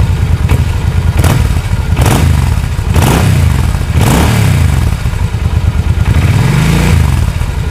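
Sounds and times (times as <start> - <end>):
Suzuki C40 motorcycle revving: 0.0 - 7.6.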